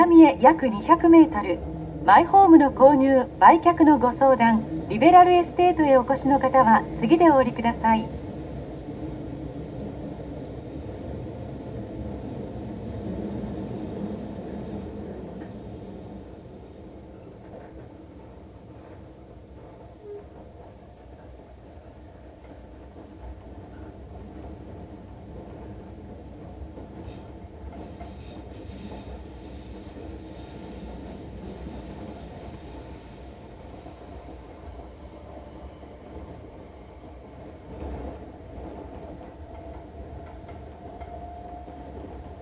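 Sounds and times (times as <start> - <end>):
speech: 0.0 - 8.2
subway train rumbling along its rails approaching a station: 0.0 - 42.4
high metallic subway train wheel squeals: 27.9 - 31.0.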